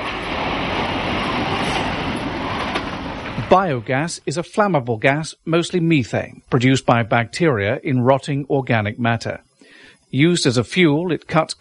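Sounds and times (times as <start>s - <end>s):
faint clattering of passenger train: 0.0s - 4.2s
biogas-powered passenger train rumbling along the rails: 0.0s - 4.9s
speech: 3.5s - 9.5s, 10.1s - 11.5s.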